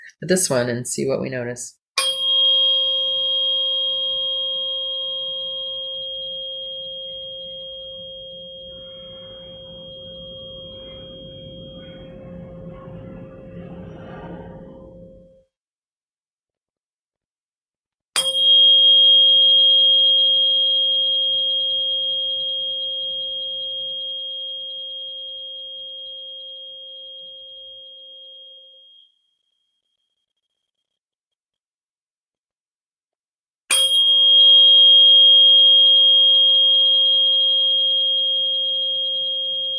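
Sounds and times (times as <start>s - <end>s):
speech: 0.1s - 1.8s
528 hertz tuning fork struck and ringing: 2.0s - 13.8s, 18.2s - 30.5s, 33.7s - 39.7s.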